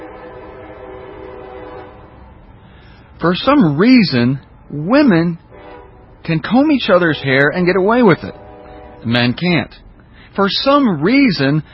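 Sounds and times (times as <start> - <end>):
passing train horn blaring in a long steady chord: 0.0 - 2.4, 5.4 - 6.2, 6.9 - 9.2
low rail rumble: 0.0 - 11.7
speech: 3.2 - 5.4, 6.3 - 8.4, 9.0 - 11.7.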